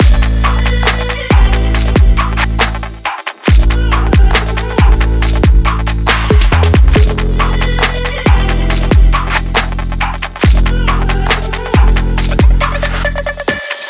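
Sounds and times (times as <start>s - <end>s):
dynamic sport action trap music loop: 0.0s - 13.8s.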